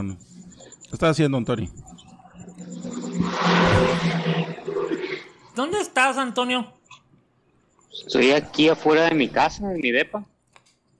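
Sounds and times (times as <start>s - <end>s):
speech: 0.0s - 1.9s, 5.6s - 6.8s, 7.9s - 10.3s
vehicle engine rumbling in outdoor street traffic: 0.0s - 5.6s
car passing by close: 2.5s - 5.5s.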